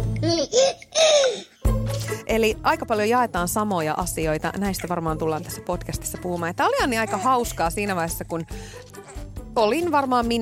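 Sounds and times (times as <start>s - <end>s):
baby babbling and laughing: 0.2s - 1.6s, 6.8s - 7.5s, 9.0s - 9.2s
speech: 2.3s - 10.3s.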